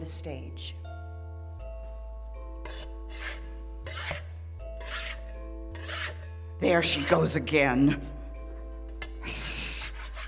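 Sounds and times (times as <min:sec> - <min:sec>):
speech: 0:00.0 - 0:00.8, 0:06.6 - 0:08.1
low steady hum: 0:00.0 - 0:10.2
scraper scraping steamed wallpaper off a wall: 0:02.6 - 0:07.5, 0:09.0 - 0:10.2.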